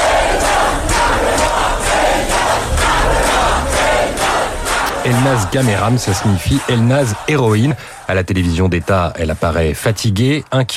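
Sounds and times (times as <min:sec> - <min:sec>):
dense roar of crowd voices: 0:00.0 - 0:08.1
large jubilant crowd chanting a welcome in unison: 0:00.0 - 0:09.5
speech: 0:05.0 - 0:10.7.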